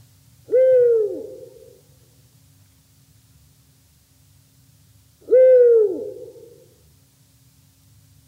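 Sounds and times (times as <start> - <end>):
low steady hiss: 0.0 - 8.2
female Eurasian eagle-owl hooting: 0.4 - 1.9, 5.2 - 6.8.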